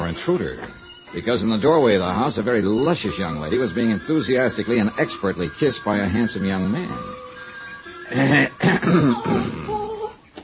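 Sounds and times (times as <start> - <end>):
speech: 0.1 - 7.2, 8.1 - 9.7
man coughing harsh and throaty: 8.2 - 9.7
rough trailing throat-clearing: 8.3 - 9.8.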